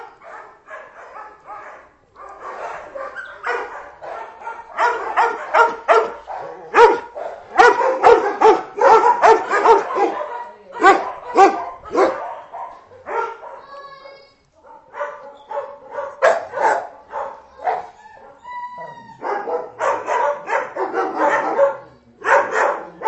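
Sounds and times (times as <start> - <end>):
dog barking: 0.0 - 13.8, 14.6 - 18.4, 19.2 - 23.0
dog whining: 17.8 - 19.4.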